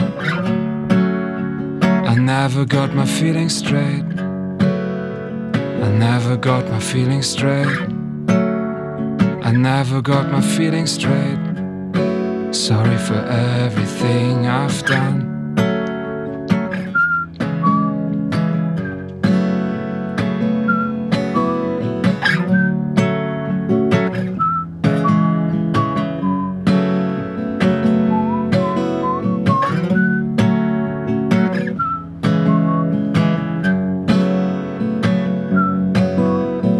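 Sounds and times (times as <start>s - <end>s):
steady rhythmic strummed accompaniment: 0.0s - 36.7s
speech: 2.3s - 4.2s, 5.9s - 7.9s, 9.6s - 11.4s, 12.5s - 15.3s
person whistling a clear wandering melody: 16.7s - 18.1s, 20.6s - 23.0s, 24.1s - 26.6s, 28.0s - 30.4s, 31.5s - 33.0s, 35.5s - 36.6s.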